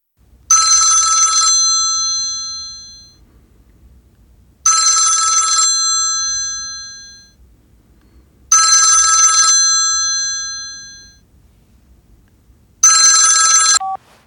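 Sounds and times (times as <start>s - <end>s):
mobile phone ringing in a large room: 0.5s - 3.2s, 4.7s - 7.4s, 8.5s - 11.2s, 12.8s - 14.1s.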